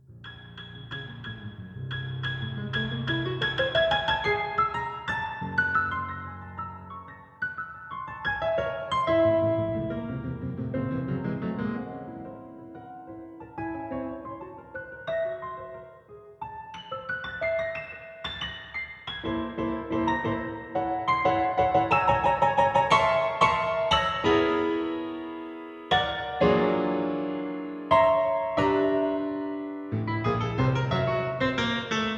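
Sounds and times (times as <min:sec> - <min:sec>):
beautiful piano music: 0:00.0 - 0:32.1.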